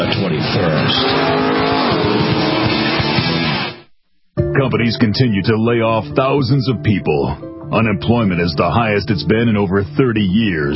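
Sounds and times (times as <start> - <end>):
sports car engines roaring in a race at Sebring: 0.0 - 3.7
speech: 4.7 - 10.7.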